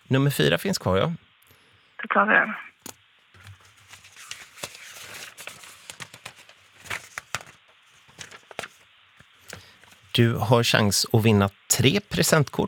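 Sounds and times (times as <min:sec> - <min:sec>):
speech: 0:00.1 - 0:01.3, 0:02.0 - 0:02.7, 0:10.2 - 0:12.6
pages flipped in a ring binder: 0:03.3 - 0:10.2.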